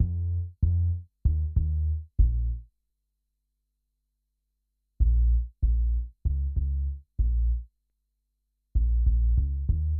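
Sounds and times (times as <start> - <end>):
hip hop bass: 0.0 - 2.7, 5.0 - 7.8, 8.7 - 9.9.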